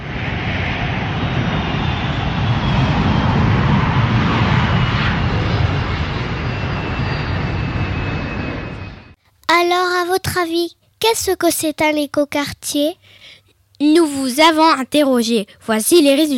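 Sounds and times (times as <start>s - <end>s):
airplane engine roar during takeoff sound effect: 0.0s - 9.2s
speech: 9.6s - 16.3s.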